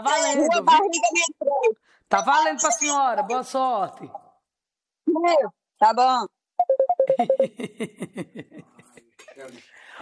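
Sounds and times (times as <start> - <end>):
speech: 0.0 - 4.2, 5.1 - 6.4, 7.1 - 8.7
phone ringtone for an incoming call: 6.6 - 7.6.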